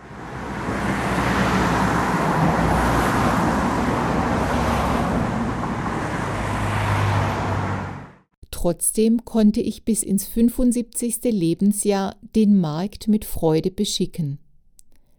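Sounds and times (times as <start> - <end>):
dense road traffic with engine and tire noise: 0.0 - 8.3
speech: 8.6 - 14.4.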